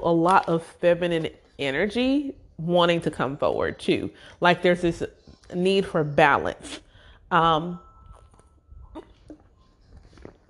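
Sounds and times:
speech: 0.0s - 7.9s
person sipping and swallowing water: 8.1s - 10.4s.

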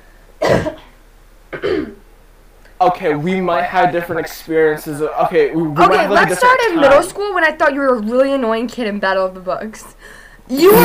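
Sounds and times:
person coughing: 0.4s - 1.0s, 1.6s - 2.0s
throat clearing: 0.4s - 1.0s, 1.6s - 2.0s
speech: 0.5s - 0.7s, 2.8s - 10.8s.

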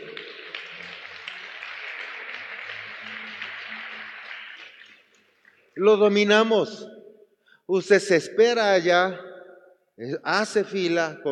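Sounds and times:
crowd clapping: 0.0s - 5.8s
speech: 5.8s - 7.0s, 7.7s - 9.3s, 10.0s - 11.3s.

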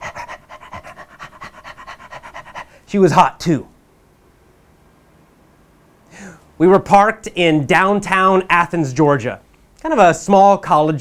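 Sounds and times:
dog panting rapidly: 0.0s - 2.8s
speech: 2.9s - 3.7s, 6.6s - 10.9s.

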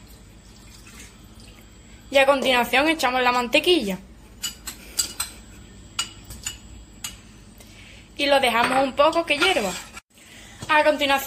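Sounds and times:
water being poured into a pot: 0.0s - 1.7s
speech: 2.1s - 4.1s, 8.2s - 9.9s, 10.7s - 11.2s.

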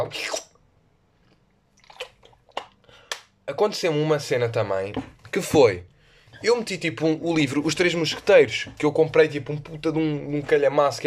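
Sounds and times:
speech: 0.0s - 0.4s, 3.5s - 11.0s
person slurping water: 0.0s - 0.6s, 1.7s - 2.9s
person swallowing and gulping water: 1.8s - 2.9s.

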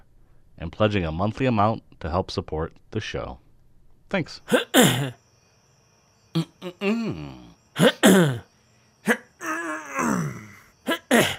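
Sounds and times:
speech: 0.6s - 3.4s, 4.1s - 5.2s, 6.4s - 9.3s
person clearing throat: 4.5s - 5.2s, 6.3s - 11.3s.

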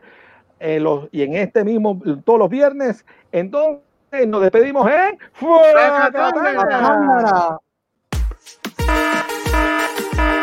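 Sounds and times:
speech: 0.6s - 7.6s
heavy rhythmic thumps: 8.1s - 10.4s
loud electronic alarm ringing: 8.8s - 10.4s.

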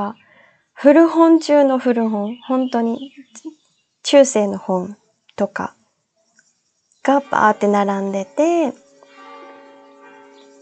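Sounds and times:
speech: 0.0s - 0.2s, 0.8s - 5.8s, 7.0s - 8.8s
church bell ringing: 7.0s - 10.6s.

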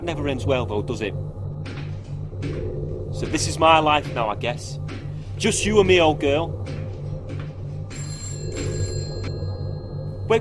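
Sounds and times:
speech: 0.0s - 1.8s, 3.2s - 6.7s
low constant rumble: 0.0s - 10.3s
telephone bell ringing: 7.9s - 9.8s.

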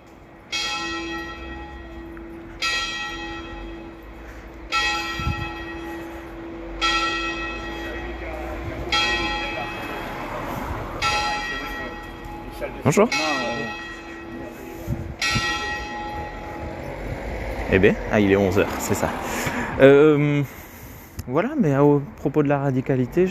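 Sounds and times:
village church bell tolling: 0.0s - 17.7s
speech: 12.8s - 13.5s, 17.7s - 20.6s, 21.3s - 23.2s.

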